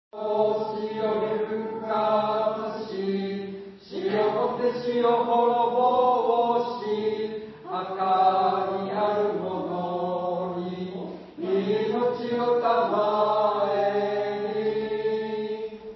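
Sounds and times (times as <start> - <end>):
hymn in Kyoto Japan: 0.2 - 15.9.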